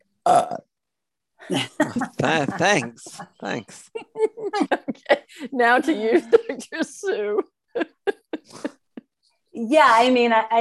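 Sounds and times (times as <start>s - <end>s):
person burping: 0.2s - 0.8s
speech: 0.3s - 0.7s, 1.4s - 8.8s, 9.6s - 10.5s
laughter: 1.5s - 3.2s, 4.0s - 9.1s.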